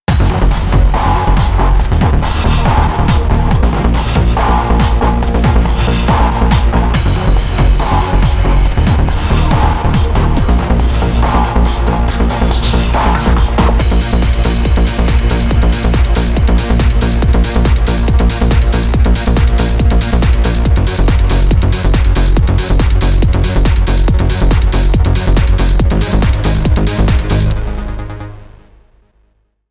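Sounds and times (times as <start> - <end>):
drum and bass music: 0.0 - 28.6.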